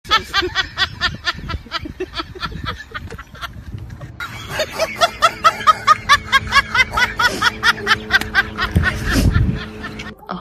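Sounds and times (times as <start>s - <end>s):
person laughing maniacally: 0.1s - 10.4s.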